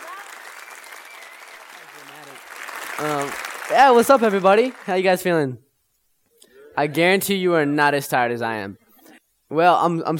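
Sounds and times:
audience applauding loudly at a live event: 0:00.0 - 0:05.3
speech: 0:03.0 - 0:05.6, 0:06.8 - 0:08.8, 0:09.5 - 0:10.1.

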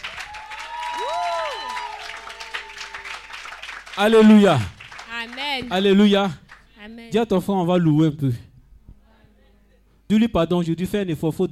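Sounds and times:
crowd cheering with whoops and shouts of joy: 0:00.0 - 0:03.6
crowd clapping: 0:00.0 - 0:06.9
speech: 0:04.0 - 0:04.8, 0:05.6 - 0:08.5, 0:10.1 - 0:11.5.

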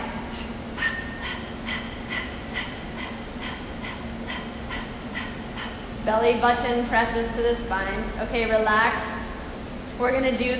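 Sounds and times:
faint low hum: 0:00.0 - 0:10.5
person panting forcefully: 0:00.3 - 0:06.0
speech: 0:06.1 - 0:09.2, 0:10.0 - 0:10.5.

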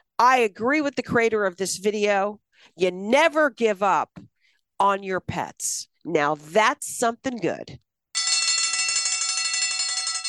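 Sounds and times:
speech: 0:00.2 - 0:07.8
bright metallic bells jingling: 0:08.2 - 0:10.2.

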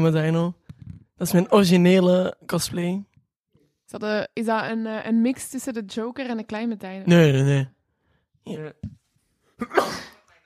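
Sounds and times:
speech: 0:00.0 - 0:00.6, 0:01.2 - 0:03.1, 0:03.9 - 0:07.8, 0:08.4 - 0:09.0, 0:09.6 - 0:10.1
sneeze: 0:09.6 - 0:10.3.

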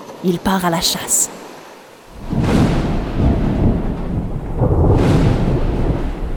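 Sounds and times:
speech: 0:00.2 - 0:01.4
heavy rolling thunder: 0:02.1 - 0:06.3
rain hissing in a storm: 0:02.1 - 0:06.3.

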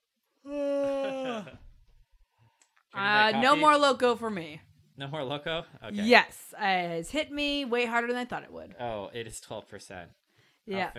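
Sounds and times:
human yawn: 0:00.4 - 0:01.6
speech: 0:03.0 - 0:10.9.

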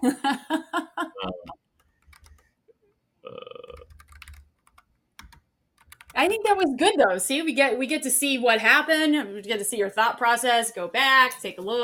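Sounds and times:
speech: 0:00.0 - 0:00.4, 0:06.2 - 0:11.8
keys being pressed on a computer keyboard: 0:01.8 - 0:02.5, 0:03.7 - 0:06.4.

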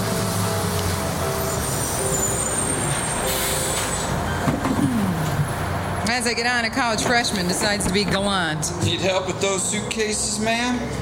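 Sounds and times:
city bus air brakes hissing: 0:00.0 - 0:05.5
city bus brakes squealing: 0:00.0 - 0:11.0
city bus engine drone: 0:00.0 - 0:11.0
speech: 0:06.2 - 0:11.0.

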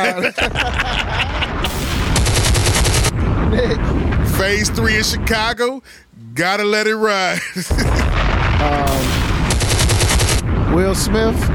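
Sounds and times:
laughter: 0:00.0 - 0:01.7, 0:07.3 - 0:08.2
speech: 0:00.0 - 0:01.8, 0:03.5 - 0:09.3, 0:10.8 - 0:11.5
bomb-like explosive blasts: 0:00.4 - 0:05.7, 0:07.7 - 0:11.5.

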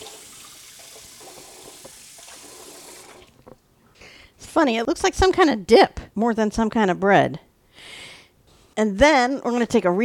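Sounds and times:
tap water running while hands are washed: 0:00.0 - 0:03.5
speech: 0:04.5 - 0:07.5, 0:08.8 - 0:10.0.

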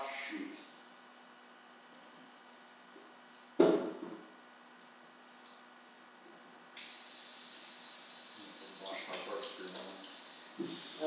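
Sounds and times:
sharp knock: 0:03.6 - 0:04.2
running tap water washing a corkscrew: 0:06.8 - 0:10.9.

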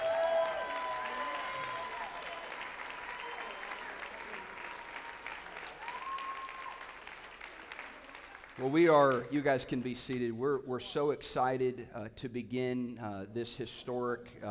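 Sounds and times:
whistles: 0:00.0 - 0:02.6
cheers: 0:00.0 - 0:08.7
large standing crowd applauding: 0:00.0 - 0:10.0
speech: 0:08.6 - 0:14.5.

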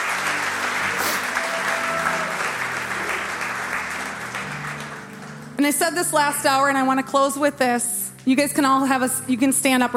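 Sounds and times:
sustained crowd applause and cheering: 0:00.0 - 0:05.6
speech: 0:05.6 - 0:09.9.

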